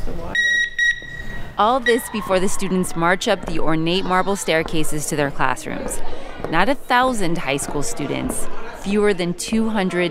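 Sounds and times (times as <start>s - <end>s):
speech: 0.1s - 0.6s, 1.6s - 10.0s
security guard's handheld metal detector wand beeping at a school: 0.4s - 1.5s.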